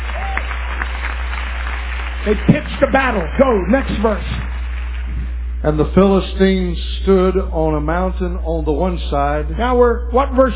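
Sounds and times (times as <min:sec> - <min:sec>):
roomful of people clapping their hands: 0:00.0 - 0:05.6
speech: 0:02.2 - 0:04.4, 0:05.6 - 0:10.5.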